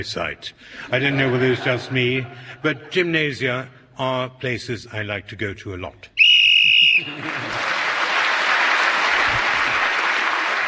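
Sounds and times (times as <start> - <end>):
speech: 0.0 - 6.1, 7.0 - 7.8
laughter: 0.8 - 3.0, 6.6 - 8.0
shrill game show whistle blast: 6.2 - 7.2
enthusiastic audience applause: 6.8 - 10.6.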